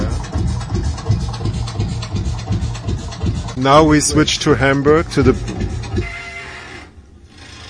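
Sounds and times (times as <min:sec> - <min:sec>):
low rumble: 0:00.0 - 0:07.2
speech: 0:03.6 - 0:05.6
bridge in Hamburg squealing: 0:03.8 - 0:07.6
sustained rasping metallic screech: 0:05.8 - 0:07.6.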